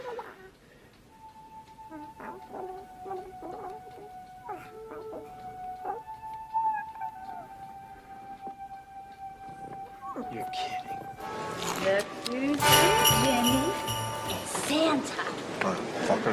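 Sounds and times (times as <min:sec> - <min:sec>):
clucking noises: 0:00.0 - 0:16.2
dog howling: 0:01.9 - 0:08.0
speech: 0:10.4 - 0:12.8.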